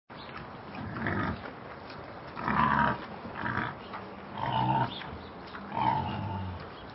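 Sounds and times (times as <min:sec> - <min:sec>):
wild boar grunting: 0:00.8 - 0:01.4, 0:02.4 - 0:05.0, 0:05.6 - 0:06.7.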